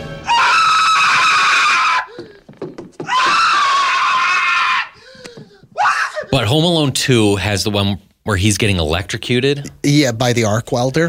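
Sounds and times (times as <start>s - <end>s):
movie character screaming at a tarantula: 0.2s - 2.3s, 3.0s - 5.1s, 5.8s - 6.4s
speech: 6.3s - 11.0s.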